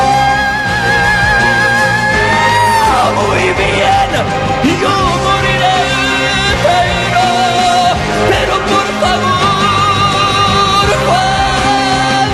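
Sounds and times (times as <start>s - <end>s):
full loud band playing: 0.0s - 12.3s
singer belting long piercing high notes: 0.0s - 12.3s.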